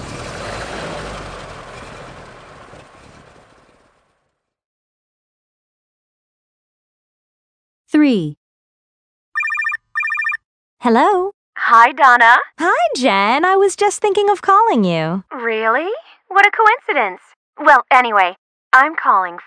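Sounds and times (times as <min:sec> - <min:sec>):
fishing boat engine starting and running: 0:00.0 - 0:04.2
speech: 0:07.9 - 0:08.4, 0:10.8 - 0:19.4.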